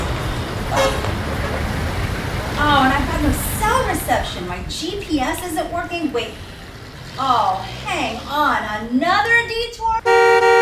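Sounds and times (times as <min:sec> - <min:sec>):
road traffic noise with rumble of engines: 0:00.0 - 0:10.6
car horn blast in traffic: 0:00.7 - 0:01.1, 0:10.0 - 0:10.6
speech: 0:04.1 - 0:06.5, 0:07.2 - 0:10.5.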